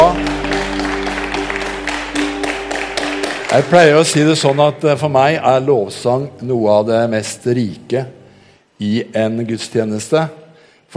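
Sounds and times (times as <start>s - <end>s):
audience applause: 0.0s - 5.0s
sustained tonal hum from instruments or organ: 0.0s - 6.3s
speech: 3.5s - 8.2s, 8.8s - 10.4s.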